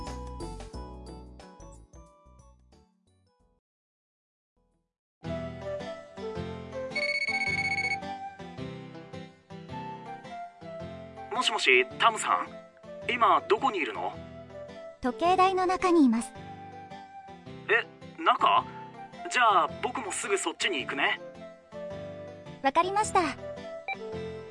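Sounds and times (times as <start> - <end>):
melodic electronic mobile phone ringtone inside the Sapporo Clock Tower: 6.9 - 8.2
speech: 11.4 - 14.2, 15.0 - 16.4, 17.7 - 18.7, 19.3 - 21.3, 22.6 - 23.4.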